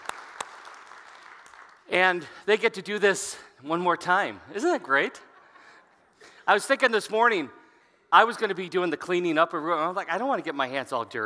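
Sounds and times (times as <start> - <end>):
audience applause: 0.0 - 1.9
speech: 1.9 - 5.3, 6.4 - 11.2.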